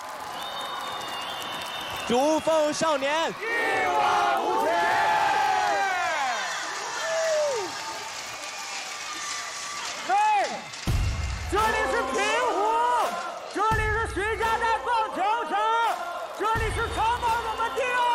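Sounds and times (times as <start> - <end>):
large live audience at a baseball stadium screaming and cheering after a performance: 0.0 - 18.1
speech: 2.1 - 4.5
group chant shouted by the audience: 3.4 - 6.1, 11.6 - 13.7, 14.3 - 18.1.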